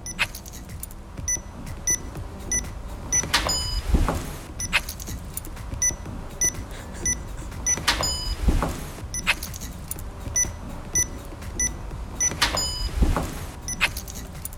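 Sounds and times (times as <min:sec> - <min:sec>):
workplace door entry keypad beeps: 0:01.3 - 0:05.2, 0:05.8 - 0:09.4, 0:10.4 - 0:14.3.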